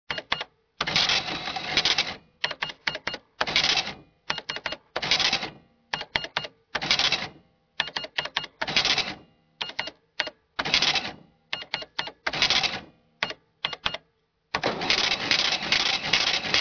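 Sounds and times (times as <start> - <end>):
electronic register: 0.1 - 14.0, 14.6 - 16.5.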